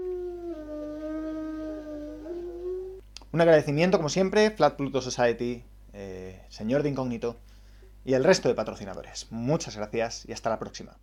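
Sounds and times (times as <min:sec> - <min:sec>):
wolf howling: 0:00.0 - 0:03.0
steady low hum: 0:00.0 - 0:11.0
speech: 0:03.3 - 0:11.0.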